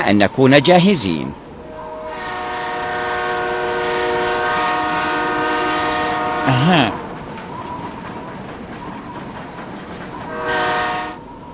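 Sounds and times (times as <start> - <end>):
speech: 0.0 - 1.4, 6.5 - 7.0
train rumbling: 0.0 - 11.5
train horn-like tone: 1.6 - 7.1, 10.3 - 11.2.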